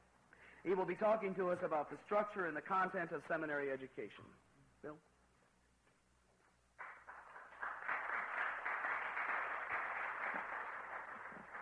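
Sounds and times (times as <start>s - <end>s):
speech: 0.6s - 5.1s
applause of an audience of men at a seminary: 6.8s - 11.6s.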